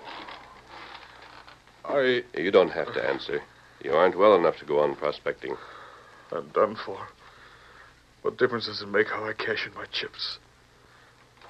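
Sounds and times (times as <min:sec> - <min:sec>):
chair creaking under a man being lowered into it: 0:00.0 - 0:01.9
speech: 0:02.0 - 0:07.2, 0:08.2 - 0:10.4.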